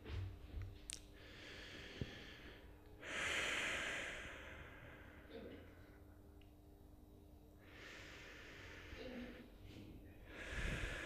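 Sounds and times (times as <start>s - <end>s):
person breathing deeply in a breathing demonstration: 1.2s - 5.4s, 7.6s - 11.0s.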